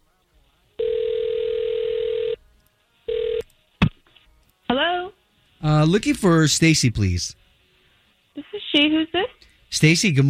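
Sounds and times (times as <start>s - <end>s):
telephone ring tone: 0.8s - 2.4s, 3.1s - 3.4s
speech: 5.8s - 7.4s, 8.8s - 10.2s.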